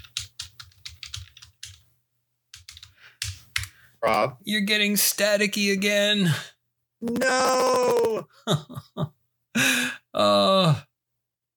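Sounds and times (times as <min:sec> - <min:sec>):
computer keyboard typing: 0:00.0 - 0:01.8, 0:02.5 - 0:03.8
speech: 0:04.0 - 0:09.2, 0:10.2 - 0:10.8.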